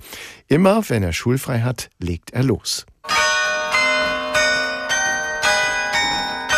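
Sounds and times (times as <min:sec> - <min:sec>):
speech: 0:00.5 - 0:02.9
carillon bells ringing: 0:03.0 - 0:06.5.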